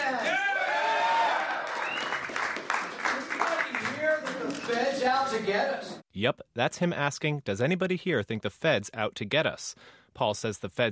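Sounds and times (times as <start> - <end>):
scattered whoops and shouts from audience: 0.0 - 2.2
audience applause at a campaign event in Des Moines: 0.1 - 5.2
speech: 5.3 - 10.8.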